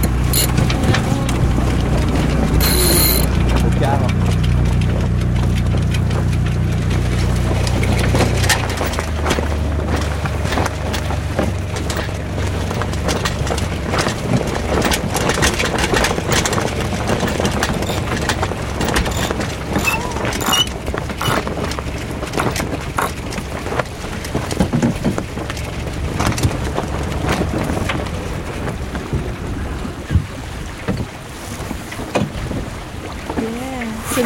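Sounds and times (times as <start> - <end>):
sailboat winch ratchet clicking as mainsail is hoisted: 0.0 - 0.8, 2.6 - 3.3, 17.3 - 21.5
sailboat engine idling at lowered revs: 0.0 - 34.2
faint voices: 0.4 - 4.2.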